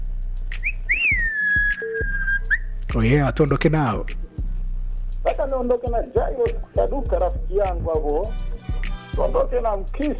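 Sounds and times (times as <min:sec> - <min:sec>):
low rhythmic background: 0:00.0 - 0:10.1
human whistling: 0:00.6 - 0:02.7
speech: 0:02.9 - 0:04.2, 0:05.4 - 0:08.4, 0:09.2 - 0:10.1.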